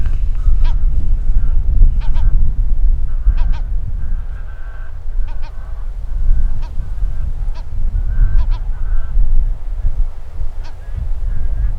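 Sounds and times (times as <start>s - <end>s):
slaty-backed gull Larus pacificus calling: 0.0s - 11.7s.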